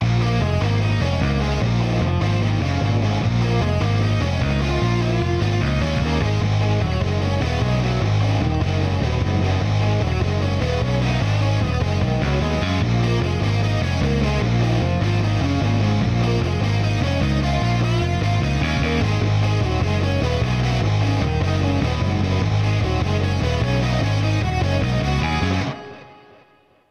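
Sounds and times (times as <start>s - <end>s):
bass guitar with chorus effect: 0.0s - 26.4s.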